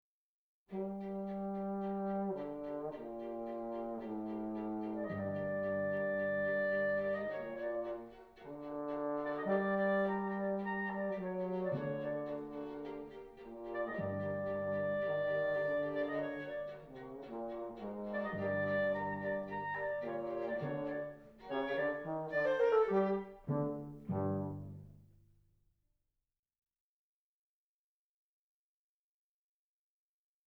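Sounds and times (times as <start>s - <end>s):
clarinet underscore music: 0.7s - 25.1s.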